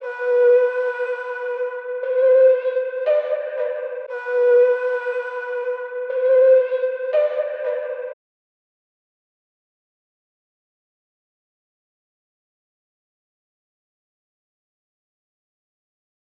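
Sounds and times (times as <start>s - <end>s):
flute melody loop in A minor for trap: 0.0s - 8.2s.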